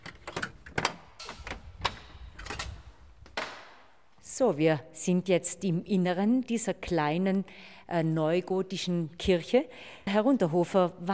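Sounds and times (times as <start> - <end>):
key rattling and turning in the lock of a small neo-Gothic church: 0.0 - 3.0
heavy church door scraping and creaking open: 0.0 - 3.7
sharp metallic clicks and clunks: 0.0 - 3.9
speech: 4.4 - 11.1.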